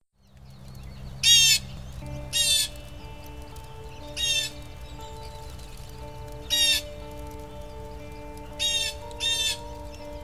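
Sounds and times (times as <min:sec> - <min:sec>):
blue jay harsh raspy squawking calls: 0:01.2 - 0:02.9, 0:03.8 - 0:07.1, 0:08.5 - 0:10.0.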